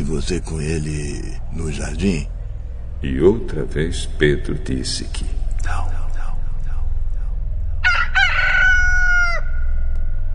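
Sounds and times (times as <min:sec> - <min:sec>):
low rumbling background: 0:00.0 - 0:10.3
speech: 0:00.1 - 0:02.4, 0:03.0 - 0:05.9
rooster crowing: 0:07.8 - 0:09.8.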